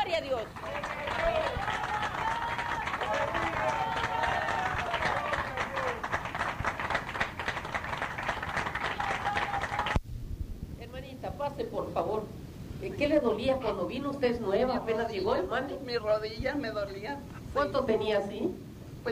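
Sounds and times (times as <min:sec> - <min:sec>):
voices calling out: 0:00.0 - 0:06.1
crowd clapping loudly and steadily: 0:00.0 - 0:10.0
speech: 0:00.2 - 0:01.0, 0:11.8 - 0:19.0.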